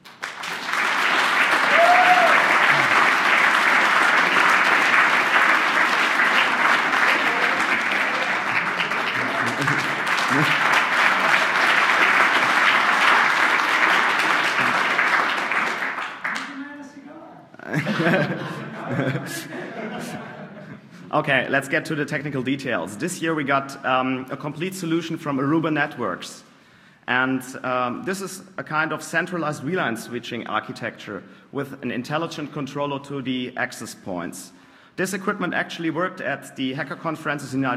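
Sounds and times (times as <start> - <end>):
large crowd applauding: 0.0 - 16.8
laughter: 6.4 - 11.8, 17.6 - 21.1
speech: 21.2 - 26.4, 27.1 - 37.7.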